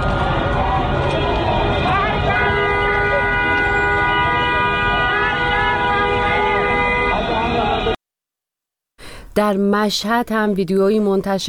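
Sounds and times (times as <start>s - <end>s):
many car horns honking in protest: 0.0s - 8.0s
speech: 9.4s - 11.4s.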